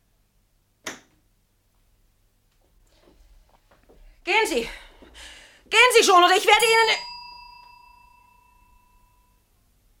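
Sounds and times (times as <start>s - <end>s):
speech: 4.4s - 4.8s, 5.7s - 7.1s
bell with a sticking clapper ringing: 6.6s - 9.4s.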